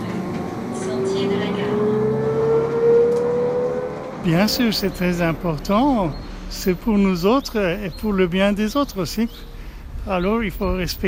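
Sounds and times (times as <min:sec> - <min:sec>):
city bus tonal whine rising in pitch while accelerating: 0:00.0 - 0:06.0
city bus engine drone: 0:00.0 - 0:11.0
speech: 0:04.2 - 0:11.0.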